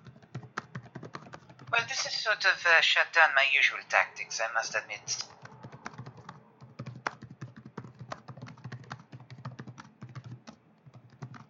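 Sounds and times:
person typing notes on a computer keyboard: 0:00.0 - 0:02.0, 0:05.2 - 0:11.4
speech: 0:01.8 - 0:05.3.

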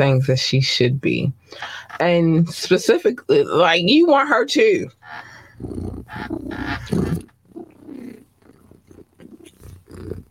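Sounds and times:
speech: 0:00.0 - 0:07.3
cat purring with rumbling low pulses: 0:04.9 - 0:10.3.

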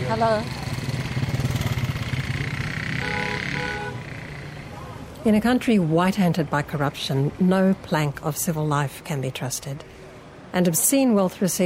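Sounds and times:
motorbike taxi engine passing: 0:00.0 - 0:04.8
speech: 0:00.1 - 0:00.6, 0:05.2 - 0:09.9, 0:10.5 - 0:11.6.

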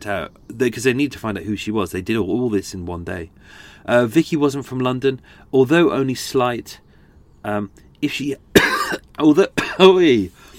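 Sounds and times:
speech: 0:00.0 - 0:06.8, 0:07.4 - 0:10.5
person coughing: 0:08.6 - 0:09.0, 0:09.6 - 0:09.9
raspy throat-clearing: 0:08.6 - 0:09.0, 0:09.6 - 0:09.8.

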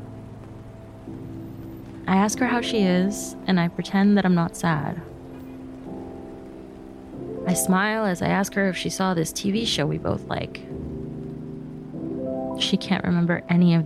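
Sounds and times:
steady rain falling: 0:00.0 - 0:13.8
speech: 0:02.1 - 0:05.1, 0:07.6 - 0:10.8, 0:12.6 - 0:13.8.

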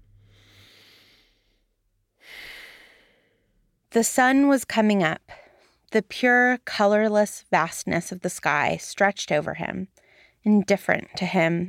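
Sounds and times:
deep breath in: 0:00.1 - 0:03.6
speech: 0:03.9 - 0:11.6.

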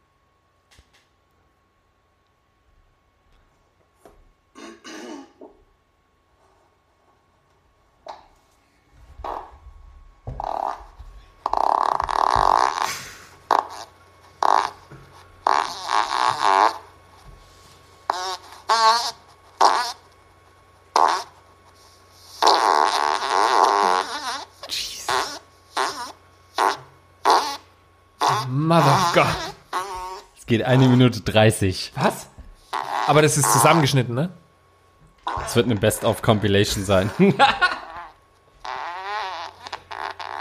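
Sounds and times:
farts: 0:09.2 - 0:09.6, 0:10.3 - 0:16.9, 0:18.1 - 0:20.0, 0:20.9 - 0:21.4, 0:22.2 - 0:31.0, 0:32.6 - 0:33.9, 0:35.2 - 0:35.7, 0:36.8 - 0:40.3
speech: 0:28.8 - 0:29.5, 0:30.5 - 0:32.2, 0:33.1 - 0:34.4, 0:35.6 - 0:37.6
laughter: 0:37.0 - 0:38.0.

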